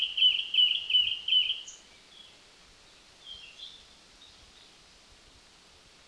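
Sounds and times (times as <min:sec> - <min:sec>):
Zappey's flycatcher song: 0:00.0 - 0:04.8.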